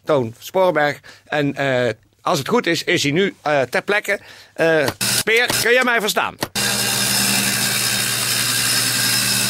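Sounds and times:
speech: 0.1s - 7.0s
power saw running: 4.9s - 5.8s, 6.6s - 9.4s.

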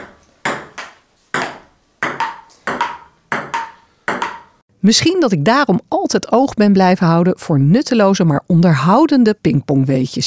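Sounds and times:
table tennis ball in play in a large sports hall: 0.0s - 4.6s
speech: 4.8s - 10.2s.

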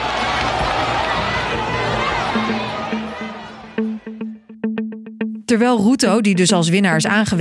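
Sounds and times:
agitated crowd of supporters shouting in a scuffle: 0.0s - 4.5s
speech: 5.5s - 7.4s.

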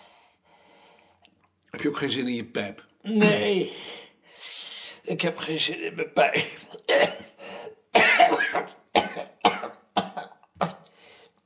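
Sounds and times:
speech: 1.8s - 4.5s, 5.1s - 7.3s
harsh wet coughs: 6.6s - 10.9s
throat-clearing rasps: 8.2s - 10.9s.

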